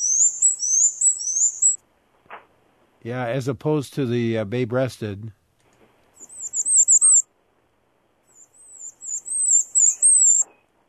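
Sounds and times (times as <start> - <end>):
black-and-white warbler song: 0.0 - 1.8, 6.2 - 7.2, 8.3 - 10.8
speech: 3.0 - 5.4.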